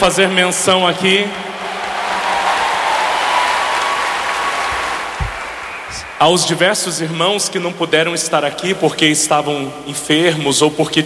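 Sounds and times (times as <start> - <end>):
speech: 0.0 - 1.5, 6.2 - 11.0
audience applause at a religious gathering: 0.1 - 6.5.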